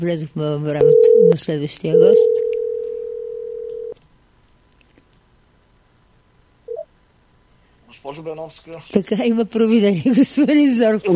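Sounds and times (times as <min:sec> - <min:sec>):
speech: 0:00.0 - 0:02.5, 0:08.1 - 0:11.1
telephone ringing tone while redialing a caller: 0:00.8 - 0:04.0.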